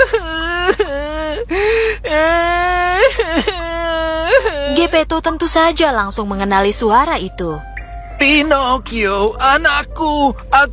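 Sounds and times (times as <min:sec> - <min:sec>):
small child crying: 0:00.0 - 0:05.1
speech: 0:04.9 - 0:10.7.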